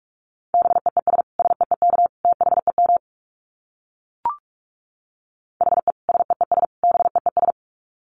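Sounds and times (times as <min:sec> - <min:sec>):
rapid Morse code beeps at 45 words per minute: 0:00.6 - 0:03.0, 0:05.6 - 0:07.6.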